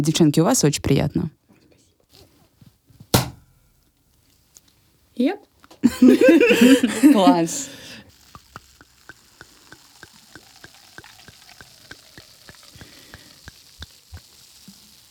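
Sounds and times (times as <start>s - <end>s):
speech: 0.0s - 1.4s, 5.2s - 7.8s
laughter: 5.8s - 9.8s
sparkling wine fizzing in a glass: 5.8s - 15.1s.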